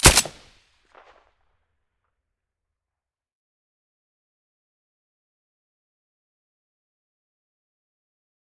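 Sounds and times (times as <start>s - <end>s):
M9A3 pistol silenced gunshot: 0.0s - 0.5s.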